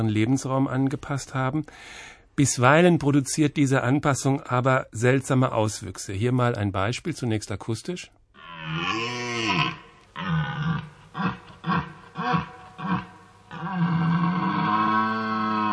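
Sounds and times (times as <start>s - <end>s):
speech: 0.0s - 9.6s
red deer stag roaring: 8.4s - 15.7s.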